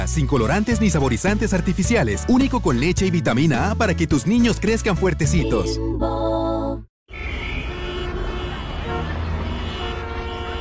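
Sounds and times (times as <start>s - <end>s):
speech: 0.2s - 6.2s
loud sustained horn blast: 7.1s - 10.5s
dense street traffic engine rumble: 7.2s - 10.5s.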